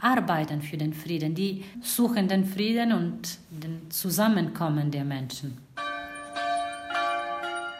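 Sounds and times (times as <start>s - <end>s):
speech: 0.0s - 5.6s
church bells ringing for prayer: 5.8s - 7.7s.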